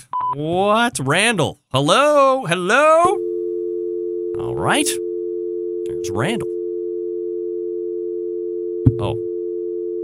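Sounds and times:
speech: 0.3 - 3.2, 4.4 - 5.0, 6.0 - 6.5, 8.8 - 9.3
telephone busy signal after hanging up: 3.0 - 10.0.

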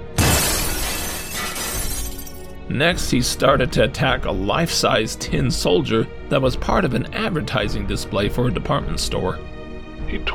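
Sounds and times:
large pane of window glass shattering from thrown bottle: 0.0 - 2.6
breaking and falling window glass shards clattering: 0.2 - 2.5
speech: 2.7 - 9.5, 10.1 - 10.3.

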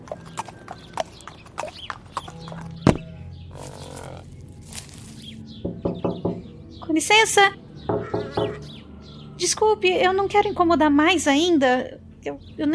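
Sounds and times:
horse hooves clip-clopping as someone rides a horse to a house: 0.0 - 4.2
rustling: 3.6 - 5.4
firm knocks on a house window: 5.6 - 6.5, 7.9 - 8.6
speech: 7.0 - 7.6, 9.4 - 12.7.

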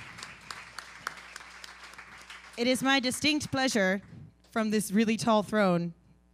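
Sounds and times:
sharper evenly spaced claps: 0.0 - 2.6
audience clapping softly: 0.0 - 4.2
speech: 2.6 - 6.0.

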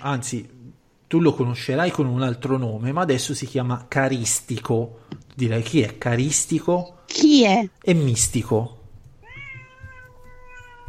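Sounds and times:
speech: 0.0 - 8.8
cat meowing: 9.2 - 10.8.

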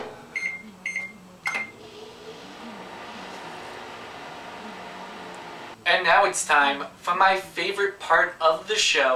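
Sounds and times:
microwave humming: 0.1 - 5.8
speech: 5.9 - 9.1.

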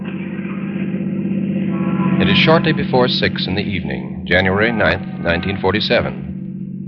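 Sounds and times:
car engine hum while driving toward a corner: 0.0 - 6.8
speech: 2.4 - 6.2.

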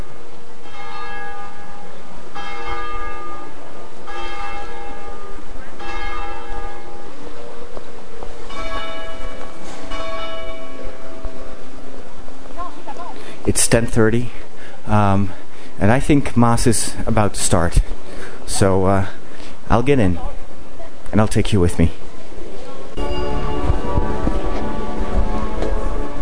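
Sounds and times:
church bells in Rome pealing before Mass: 0.0 - 12.1, 23.0 - 26.1
faint outdoor ambience: 0.0 - 26.1
speech: 13.5 - 18.0, 18.6 - 20.3, 21.1 - 22.0.

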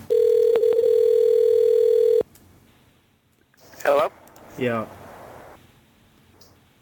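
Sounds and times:
telephone ringback tone as a call goes unanswered: 0.1 - 2.2
speech: 4.6 - 5.0.

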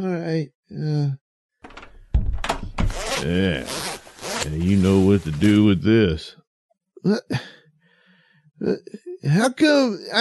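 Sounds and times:
speech: 0.0 - 1.2, 3.2 - 6.4, 7.0 - 7.6, 8.6 - 10.1
lock or latch being worked: 1.6 - 3.1
door swinging shut: 1.6 - 3.7.

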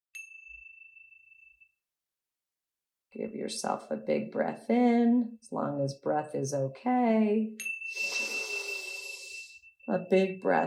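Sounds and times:
bright meditation chime ringing: 0.2 - 1.8, 7.6 - 10.4
speech: 3.1 - 8.1, 9.9 - 10.6.

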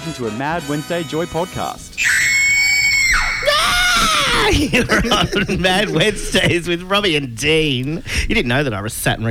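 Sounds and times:
speech: 0.1 - 2.1, 4.0 - 9.2
person screaming at a high pitch: 2.0 - 4.7
laughter: 3.4 - 7.8.

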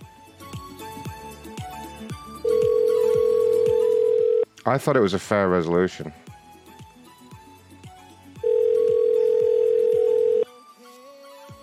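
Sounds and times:
telephone ringing tones on an outgoing call: 2.4 - 4.5, 8.4 - 10.5
speech: 4.7 - 6.2.

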